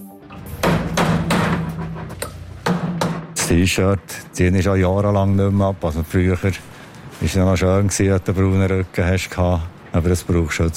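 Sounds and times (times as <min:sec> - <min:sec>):
sharp hammer blows at a construction site in Heimberg near Thun: 0:00.4 - 0:04.3
steady low rumble of construction site activity: 0:00.4 - 0:10.7
speech: 0:03.5 - 0:10.7.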